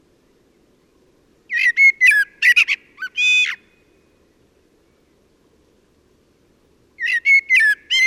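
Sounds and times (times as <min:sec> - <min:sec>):
common blackbird singing fluty whistles and squeaky twitter: 0:00.2 - 0:05.2, 0:07.0 - 0:08.0.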